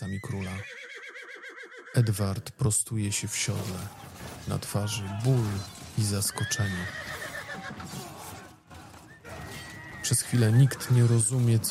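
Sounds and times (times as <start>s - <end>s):
horses whinnying as they rear up: 0.0s - 2.2s, 3.3s - 11.6s
speech: 0.1s - 1.1s, 2.0s - 8.0s, 10.1s - 11.6s
low restless commotion: 3.0s - 11.6s.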